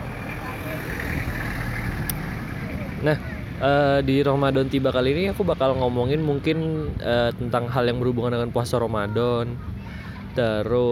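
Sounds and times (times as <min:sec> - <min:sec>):
car passing by outside: 0:00.0 - 0:05.9
speech: 0:03.0 - 0:09.7, 0:10.4 - 0:10.8.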